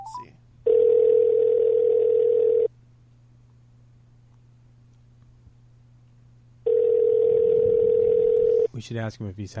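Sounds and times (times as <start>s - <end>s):
electronic ringback tone of an outgoing phone call: 0.0s - 2.7s, 6.7s - 8.7s
faint hum: 0.0s - 9.5s
speech: 8.8s - 9.5s.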